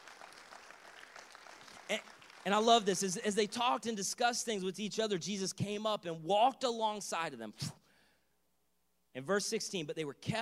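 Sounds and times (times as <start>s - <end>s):
crowd applauding: 0.0s - 3.5s
speech: 1.9s - 7.8s, 9.2s - 10.3s.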